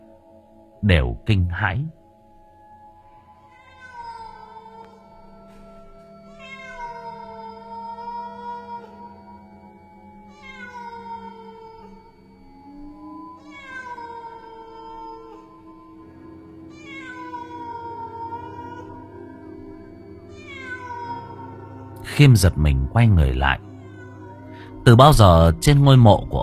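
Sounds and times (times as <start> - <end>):
speech: 0.8 - 2.0, 22.2 - 23.7, 24.9 - 26.4
black cat meowing from a grave in a cemetery at night: 3.4 - 5.3, 6.2 - 9.2, 10.2 - 12.2, 12.8 - 15.7, 16.7 - 19.0, 20.3 - 22.0, 23.6 - 24.8.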